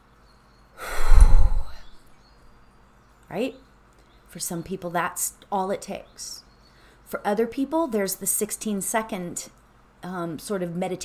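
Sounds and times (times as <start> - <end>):
person taking a very deep calming breath: 0.8 - 2.0
speech: 3.3 - 3.7, 4.4 - 6.4, 7.1 - 11.0.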